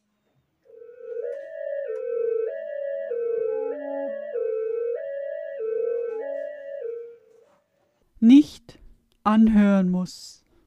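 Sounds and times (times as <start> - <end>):
electronic cabinet alarm tone alternating between two pitches: 0.7 - 7.2
speech: 9.3 - 10.4.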